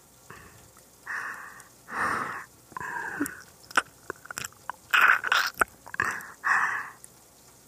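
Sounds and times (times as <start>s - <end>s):
breathing: 0.3s - 3.3s, 6.0s - 7.0s
juicy salty food being bitten and chewed: 3.7s - 6.1s.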